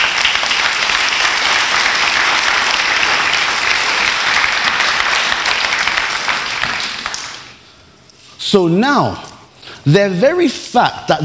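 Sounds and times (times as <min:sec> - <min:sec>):
large group clapping steadily and loudly: 0:00.0 - 0:07.6
speech: 0:08.5 - 0:09.2, 0:09.8 - 0:11.2.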